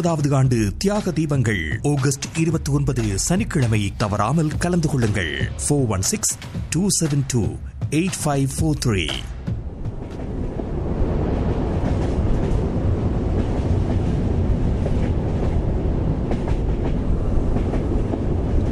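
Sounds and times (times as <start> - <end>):
speech: 0.0 - 9.4
train speeding along the tracks: 0.0 - 18.7
faint rhythmic clatter of wheels on rails: 9.8 - 18.7.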